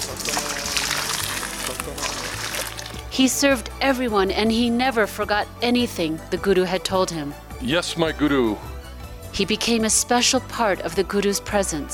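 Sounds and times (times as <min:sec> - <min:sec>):
water pouring and sloshing: 0:00.0 - 0:03.1
speech: 0:03.2 - 0:08.7, 0:09.4 - 0:11.9.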